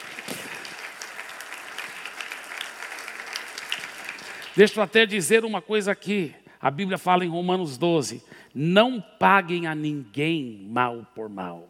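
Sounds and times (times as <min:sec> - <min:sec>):
audience applause: 0:00.0 - 0:04.8
speech: 0:04.6 - 0:11.6.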